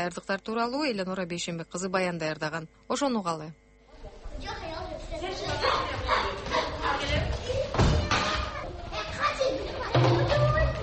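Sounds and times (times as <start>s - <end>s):
speech: 0.0s - 3.6s
children playing in a kindergarten: 3.9s - 10.8s
young children shouting: 5.2s - 10.8s
thud: 7.7s - 8.5s.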